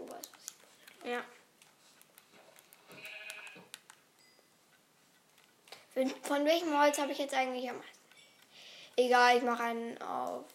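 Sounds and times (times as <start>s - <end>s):
faint clicking game sounds: 0.0s - 10.5s
speech: 1.1s - 1.4s, 6.0s - 8.0s, 9.0s - 10.5s
video game sheep bleating: 2.9s - 3.7s.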